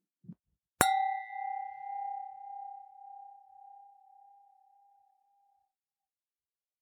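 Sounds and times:
two ordinary non-crystal wine glasses clinking: 0.8 - 2.8.

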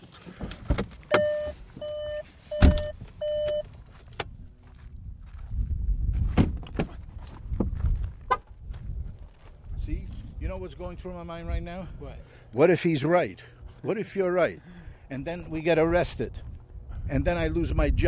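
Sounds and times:
short electronic car chimes: 1.1 - 3.7
footsteps crunching on a hard surface: 1.6 - 10.4
car door thudding shut: 2.6 - 2.9, 6.4 - 7.0
speech: 10.6 - 16.4, 17.1 - 18.0.

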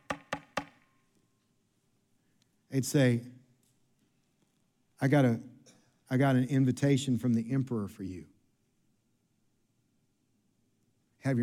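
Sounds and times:
quick crisp knocks on a door: 0.0 - 0.8
speech: 2.7 - 3.4, 5.0 - 5.5, 6.1 - 8.3, 11.2 - 11.4.

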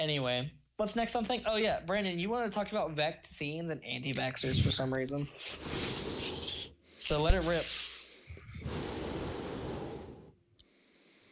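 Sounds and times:
speech: 0.0 - 6.0, 7.0 - 7.8
heavy breathing blown straight into a microphone: 4.4 - 11.3
sharp click: 7.2 - 7.5.

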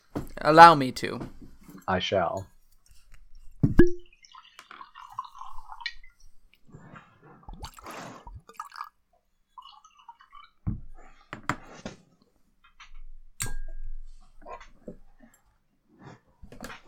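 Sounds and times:
speech: 0.4 - 2.5
scotch being poured into a glass: 3.8 - 6.2, 7.5 - 10.6
glass clinking: 13.4 - 14.1.

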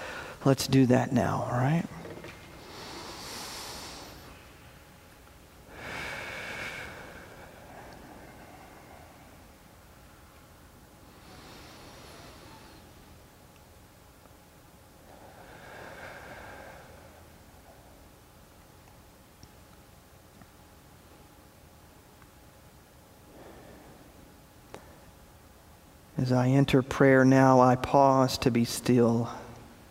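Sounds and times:
deep breaths in through the nose and out through the mouth: 0.0 - 0.4, 2.2 - 4.7, 5.6 - 10.3, 11.0 - 13.1, 15.0 - 18.1, 23.2 - 25.1
hiss: 0.0 - 29.8
speech: 0.4 - 2.0, 26.3 - 29.4.

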